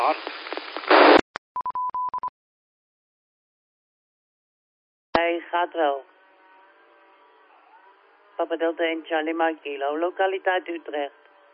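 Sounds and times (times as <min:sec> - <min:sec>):
radio repeater hiss burst: 0:00.0 - 0:01.2
speech: 0:00.1 - 0:00.4, 0:05.2 - 0:06.1, 0:08.4 - 0:11.2.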